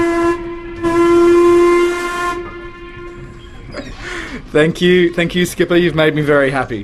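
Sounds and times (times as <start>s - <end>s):
boat whistle blowing: 0.0s - 3.7s
speech: 4.5s - 6.8s.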